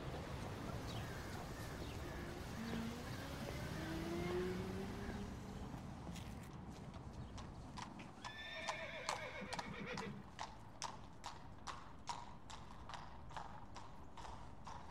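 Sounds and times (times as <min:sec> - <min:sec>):
horse hooves clip-clopping: 0:00.0 - 0:14.9
horse whinny: 0:08.2 - 0:10.2.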